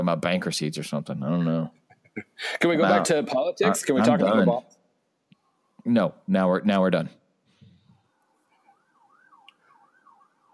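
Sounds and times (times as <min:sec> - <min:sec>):
speech: 0:00.0 - 0:04.8, 0:05.8 - 0:07.2
emergency vehicle siren wailing outside: 0:08.2 - 0:10.5.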